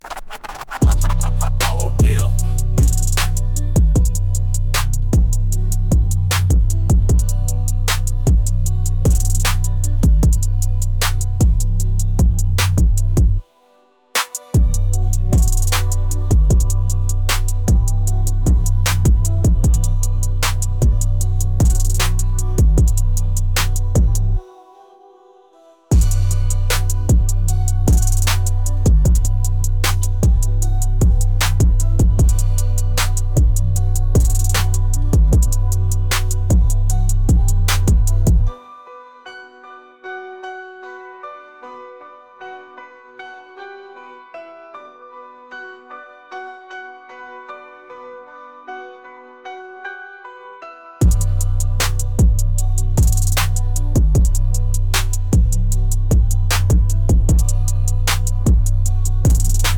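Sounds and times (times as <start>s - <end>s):
bass music: 0.7s - 13.4s, 14.4s - 24.4s, 25.9s - 38.5s, 51.0s - 59.7s.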